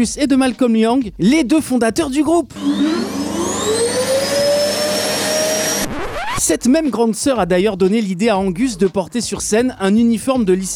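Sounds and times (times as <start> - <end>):
speech: 0.0 - 3.1, 6.5 - 10.7
vacuum cleaner running: 2.5 - 6.4.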